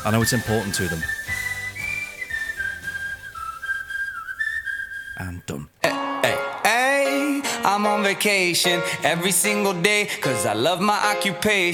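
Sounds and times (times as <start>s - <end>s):
speech: 0.0s - 1.4s, 5.2s - 5.8s, 7.6s - 11.7s
whistled melody from a pop song: 0.0s - 7.5s.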